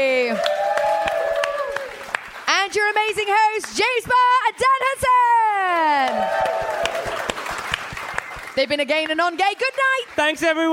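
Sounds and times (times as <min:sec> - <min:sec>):
live audience cheering and whooping loudly: 0:00.0 - 0:02.2, 0:05.4 - 0:08.5
scattered claps of a live audience: 0:00.4 - 0:04.4, 0:05.7 - 0:10.7
speech: 0:08.6 - 0:10.7.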